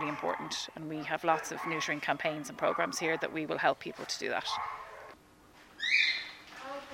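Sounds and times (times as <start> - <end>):
speech: 0.2 - 4.8, 5.9 - 6.1
cockatiel chirping: 5.8 - 6.4.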